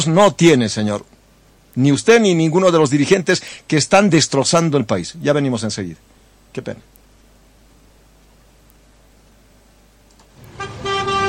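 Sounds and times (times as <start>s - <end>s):
speech: 0.0s - 1.1s, 1.8s - 7.0s
low road rumble on city streets: 10.3s - 11.2s
car horns honking in a city traffic jam: 10.4s - 11.2s.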